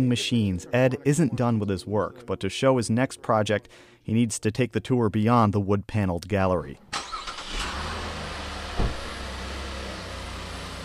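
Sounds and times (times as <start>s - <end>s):
speech: 0.0s - 7.0s
car engine rumbling as the car backs out of a garage: 6.8s - 10.8s
brief thump: 8.8s - 9.1s.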